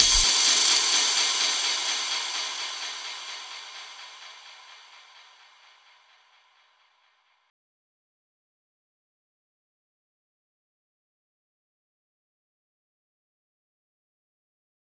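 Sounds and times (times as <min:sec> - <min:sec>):
cymbal effect in F sharp for big room house music: 0:00.0 - 0:06.8.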